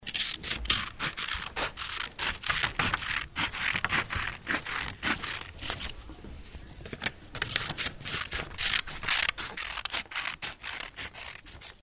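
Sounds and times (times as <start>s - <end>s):
scissors cutting: 0.0s - 5.9s, 7.4s - 11.8s.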